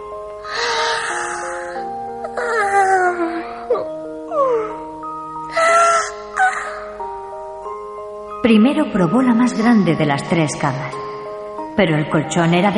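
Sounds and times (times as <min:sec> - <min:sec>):
soft steady musical backing: 0:00.0 - 0:12.7
girl yawning: 0:00.4 - 0:04.8, 0:05.5 - 0:07.0
speech: 0:08.4 - 0:11.1, 0:11.8 - 0:12.7.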